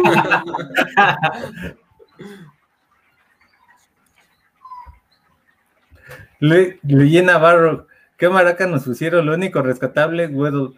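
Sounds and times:
laughter: 0:00.0 - 0:02.5
speech: 0:00.0 - 0:02.5, 0:06.4 - 0:10.7
dog whimpering and whining: 0:03.4 - 0:05.3.

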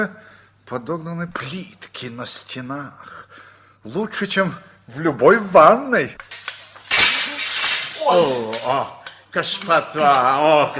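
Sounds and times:
speech: 0:00.0 - 0:06.4, 0:08.1 - 0:10.7
round glass bottle slipping from hands and breaking: 0:06.2 - 0:09.1.

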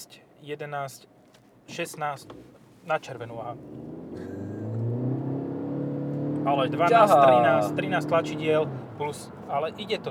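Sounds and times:
speech: 0:00.0 - 0:04.3, 0:06.4 - 0:10.0
Honda car engine revving: 0:03.2 - 0:10.0.

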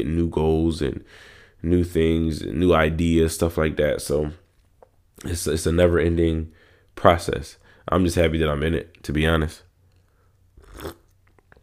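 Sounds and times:
speech: 0:00.0 - 0:04.4, 0:05.2 - 0:09.7
person sipping tea: 0:10.0 - 0:11.6
mouth clicks: 0:10.6 - 0:11.6.

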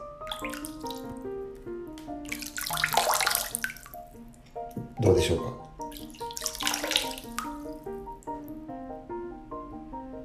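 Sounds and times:
water droplets plopping into a filled bathtub: 0:00.3 - 0:01.2, 0:01.9 - 0:08.4
speech: 0:00.4 - 0:01.3, 0:05.0 - 0:05.6.

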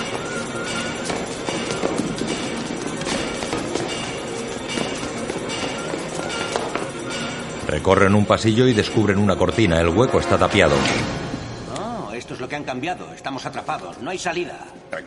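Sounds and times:
footsteps of several people running up stairs: 0:00.0 - 0:07.6
speech: 0:07.7 - 0:11.2, 0:12.5 - 0:15.0.

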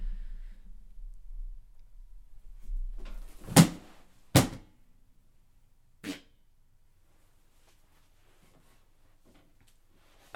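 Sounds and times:
faint low rumble: 0:00.0 - 0:03.4
person deliberately falling off a chair: 0:03.0 - 0:04.6.

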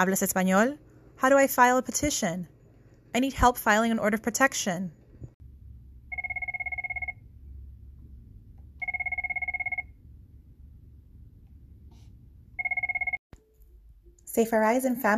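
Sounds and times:
speech: 0:00.0 - 0:05.0, 0:14.4 - 0:15.1
low hum: 0:00.0 - 0:15.1
telephone ringing at a family court in Queens: 0:06.1 - 0:07.2, 0:08.8 - 0:10.0, 0:12.6 - 0:13.2.

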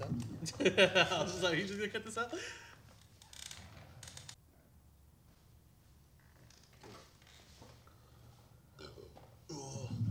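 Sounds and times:
laughter: 0:00.4 - 0:02.6
speech: 0:00.4 - 0:02.7
low throaty burps: 0:08.8 - 0:10.0.

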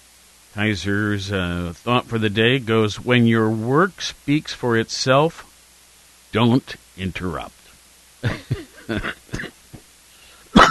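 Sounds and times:
speech: 0:00.6 - 0:05.5, 0:06.3 - 0:07.6, 0:08.2 - 0:09.6
person coughing: 0:08.2 - 0:09.6.

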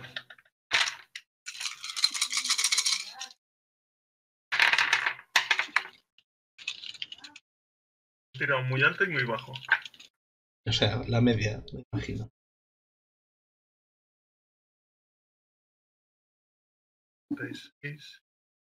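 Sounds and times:
ten-sided dice clattering across a hard table in a tabletop role-playing game: 0:00.8 - 0:03.4, 0:04.6 - 0:07.3
speech: 0:08.4 - 0:09.8, 0:10.7 - 0:12.4, 0:17.4 - 0:18.2.

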